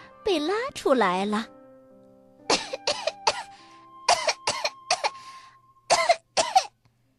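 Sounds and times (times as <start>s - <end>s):
speech: 0.4s - 1.6s
hard raspy coughing from someone with a mouth full of sand: 2.5s - 5.2s, 5.9s - 6.8s.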